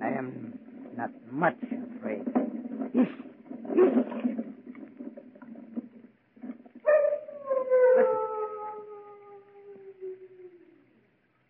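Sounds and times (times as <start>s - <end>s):
speech: 0.1s - 2.4s
large dogs howling: 6.8s - 10.9s.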